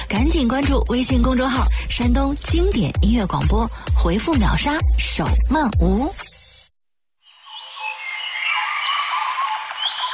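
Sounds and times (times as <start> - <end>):
speech: 0.1 - 6.3
dense chorus of birdsong with chirps and whistles: 7.3 - 10.1.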